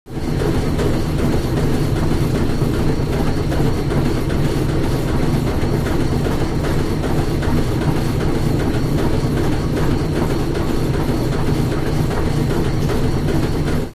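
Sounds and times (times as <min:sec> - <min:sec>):
industrial machine: 0:00.1 - 0:13.9.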